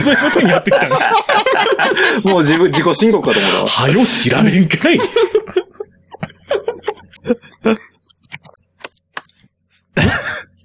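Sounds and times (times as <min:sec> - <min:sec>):
laughter: 0:00.0 - 0:03.3, 0:04.8 - 0:07.8
speech: 0:00.0 - 0:05.3, 0:07.3 - 0:07.8
typing on a computer keyboard during an internet search: 0:08.1 - 0:09.3.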